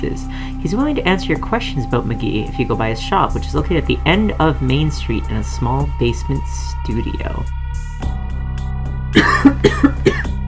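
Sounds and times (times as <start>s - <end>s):
speech: 0.0s - 8.2s, 9.4s - 10.0s
person coughing and clearing throat: 9.2s - 10.4s.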